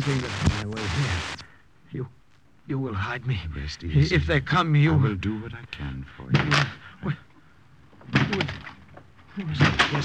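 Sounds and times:
speech: 0.0 - 7.3, 8.1 - 8.7, 9.4 - 10.0
door being forced in with heavy splintering crashes: 9.5 - 10.0.

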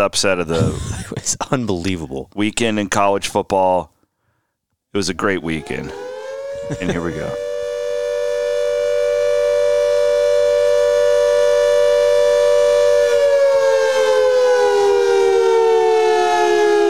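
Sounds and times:
speech: 0.0 - 3.9, 4.9 - 6.1, 6.7 - 7.5
laughter: 0.5 - 2.0, 6.6 - 7.4
World War II air raid siren wailing: 5.4 - 16.8.

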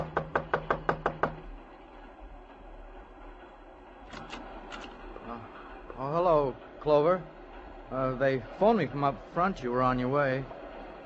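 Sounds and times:
sharp knocks on a door: 0.0 - 1.5
steady low rumble: 1.3 - 11.0
speech: 8.3 - 10.6.

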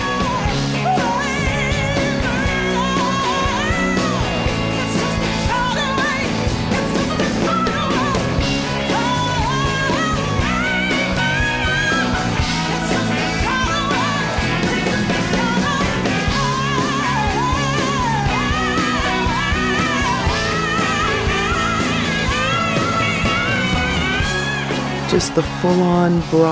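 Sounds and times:
full band playing live rock: 0.0 - 26.5
speech: 25.2 - 26.5.

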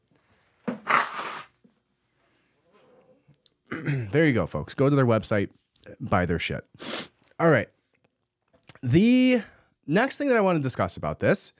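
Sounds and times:
person blowing their nose: 0.7 - 1.6, 6.8 - 7.2
person sniffing: 0.9 - 1.5, 6.8 - 7.2
speech: 3.8 - 7.8, 8.8 - 11.5.

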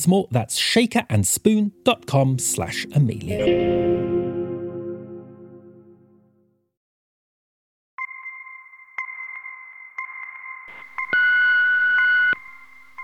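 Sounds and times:
speech: 0.0 - 4.2
fading musical note: 1.6 - 6.5
telephone dialing tones before a phone call: 10.7 - 13.0.

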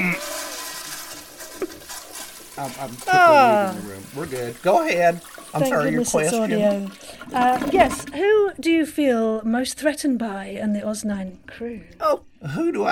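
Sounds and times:
toilet being flushed: 0.0 - 8.4
speech: 2.6 - 12.8.

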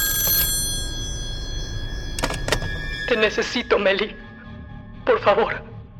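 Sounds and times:
telephone ringing: 0.0 - 3.7
speech: 3.1 - 4.2, 5.2 - 5.7.

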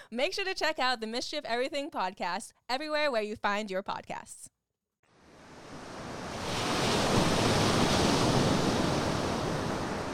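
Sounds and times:
speech: 0.1 - 4.6
ocean surf washing in on an open beach: 5.2 - 10.1
gusty wind rumbling across the microphone on an open beach: 5.3 - 10.1.

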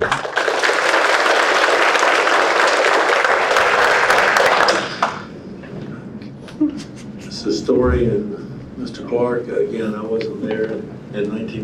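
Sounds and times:
applause from family and friends in a courtroom: 0.0 - 5.3
speech: 7.7 - 11.6.

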